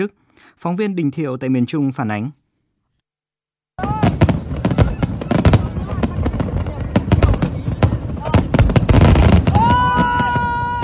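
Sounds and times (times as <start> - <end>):
speech: 0.0 - 2.4
crowd murmuring and cheering: 3.8 - 8.7
fireworks booming and crackling over a river: 3.8 - 10.8
whistling fireworks rockets rising: 3.8 - 10.8.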